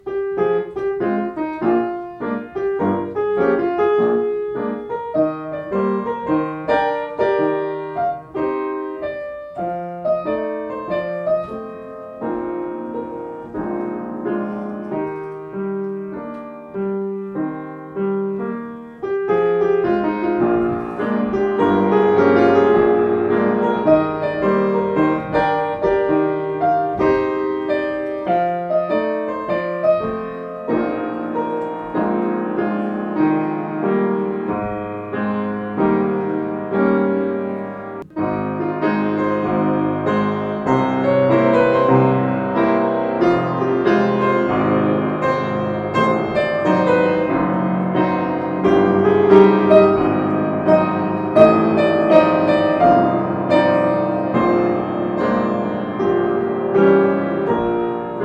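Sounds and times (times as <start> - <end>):
player piano playing: 0.0 - 58.2.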